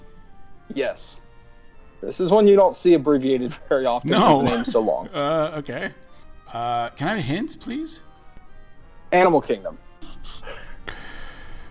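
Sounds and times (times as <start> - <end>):
speech: 0.8 - 1.2, 2.0 - 8.1, 9.1 - 10.4
trivia player gasping in sudden recognition: 4.1 - 5.9, 10.6 - 11.6
laughter: 4.1 - 8.0.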